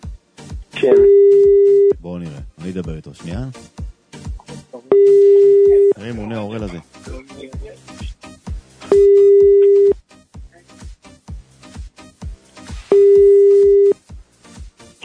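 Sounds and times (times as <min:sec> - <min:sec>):
quick rhythmic thumping beat: 0:00.0 - 0:15.0
speech: 0:00.8 - 0:01.2, 0:02.0 - 0:03.7, 0:06.0 - 0:07.5
outgoing phone call ringback tones, unanswered: 0:00.8 - 0:01.9, 0:04.9 - 0:06.0, 0:08.9 - 0:10.0, 0:12.9 - 0:14.0.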